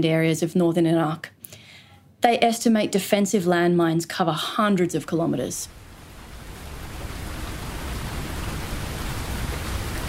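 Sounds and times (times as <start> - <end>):
speech: 0.0 - 1.4, 2.2 - 5.8
steady rainfall: 5.6 - 10.0.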